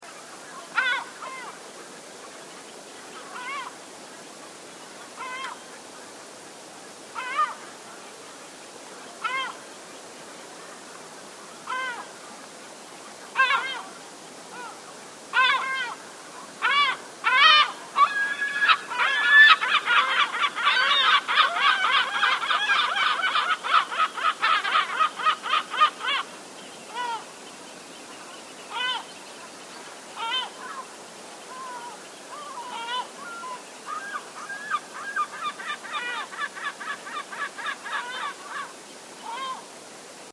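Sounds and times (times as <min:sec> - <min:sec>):
lesser black-backed gull: 0:00.7 - 0:01.6, 0:05.2 - 0:05.6, 0:07.2 - 0:07.6, 0:09.2 - 0:09.6, 0:11.7 - 0:12.1, 0:13.4 - 0:13.9, 0:15.4 - 0:16.0, 0:16.6 - 0:26.2, 0:28.7 - 0:29.1, 0:30.2 - 0:30.8, 0:31.5 - 0:39.6.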